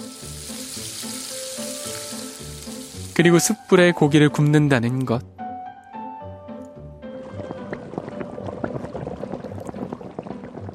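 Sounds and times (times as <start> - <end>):
speech: 3.2 - 5.4
pot of soybean paste stew with beef rib bones bubbling: 7.3 - 10.7.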